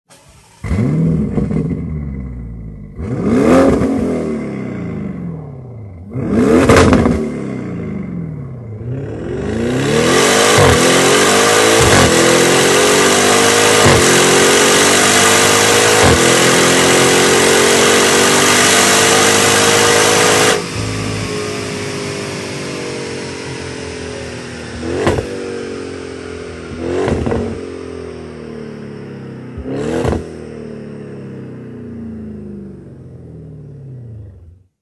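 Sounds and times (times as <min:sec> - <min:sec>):
Audi RS6 Avant car engine: 0:00.0 - 0:34.7.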